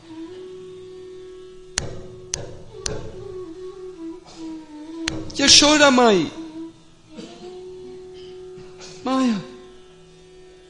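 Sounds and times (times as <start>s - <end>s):
steady droning musical tone: 0.0s - 10.6s
loud sharp knocking on a door: 1.8s - 3.3s, 5.1s - 5.4s
speech: 5.4s - 6.4s.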